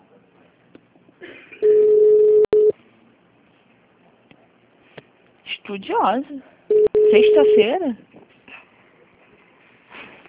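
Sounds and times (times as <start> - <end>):
telephone signal steady mid-pitched electronic tone: 1.6 - 2.7, 6.7 - 7.7
speech: 5.7 - 8.1.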